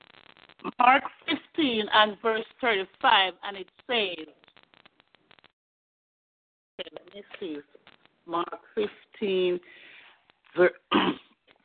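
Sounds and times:
speech: 0:00.6 - 0:04.4, 0:06.8 - 0:09.8, 0:10.6 - 0:11.2
preacher clearing throat: 0:10.9 - 0:11.4.

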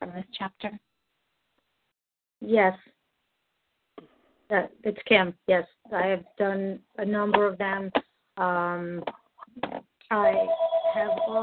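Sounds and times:
speech: 0:00.2 - 0:00.9, 0:02.4 - 0:03.0, 0:04.5 - 0:11.4
phone electronic ringtone chirping in short beeps: 0:10.2 - 0:11.4.

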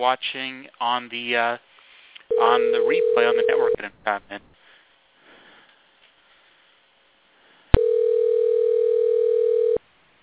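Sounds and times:
speech: 0:00.0 - 0:01.7, 0:02.3 - 0:04.6
telephone electronic ring tone on a call: 0:02.3 - 0:03.8, 0:07.8 - 0:09.8.

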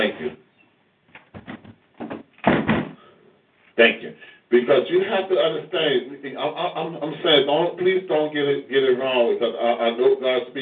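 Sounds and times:
door being closed with knocks and rattles: 0:01.1 - 0:03.0
speech: 0:03.8 - 0:10.6.

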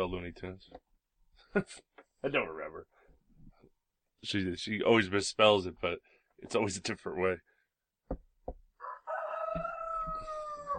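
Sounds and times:
speech: 0:00.0 - 0:03.0, 0:04.2 - 0:07.5
rooster crowing: 0:08.8 - 0:10.7.

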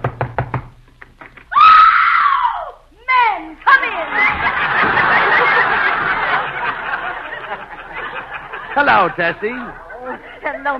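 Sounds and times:
firm knocking on a door: 0:00.0 - 0:00.7
loud high-pitched voice crying out: 0:01.5 - 0:02.8
laughter: 0:03.7 - 0:10.7
speech: 0:08.9 - 0:10.7.

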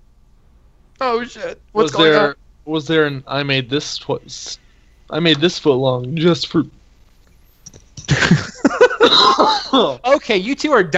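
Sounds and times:
speech: 0:01.0 - 0:06.8, 0:08.1 - 0:10.9
laughter: 0:01.8 - 0:02.3, 0:08.0 - 0:10.0
harsh raspy coughing fit with wheezy gasps: 0:08.1 - 0:10.0.

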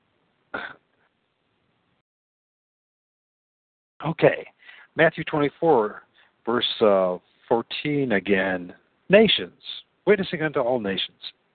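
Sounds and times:
dry cough: 0:00.6 - 0:00.8
speech: 0:04.0 - 0:11.4.

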